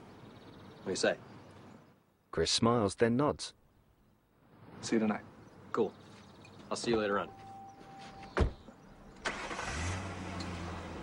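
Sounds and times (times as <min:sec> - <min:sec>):
speech: 0:00.9 - 0:01.3, 0:02.3 - 0:03.6, 0:04.8 - 0:06.1, 0:06.7 - 0:07.4
car door thudding shut: 0:08.3 - 0:08.7
car engine cranking, catching and idling: 0:09.0 - 0:11.0.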